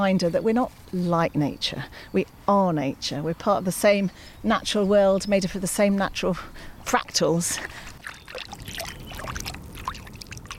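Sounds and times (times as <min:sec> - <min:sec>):
speech: 0:00.0 - 0:08.7
trickling stream babbling and gurgling: 0:05.3 - 0:10.5.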